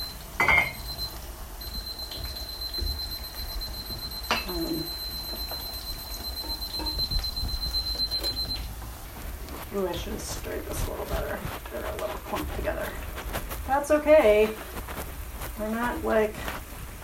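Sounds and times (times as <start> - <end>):
kitchen timer beeping for pasta: 0.0 - 8.7
low noise: 0.0 - 17.0
speech: 10.0 - 13.1, 13.7 - 14.7, 15.6 - 16.5.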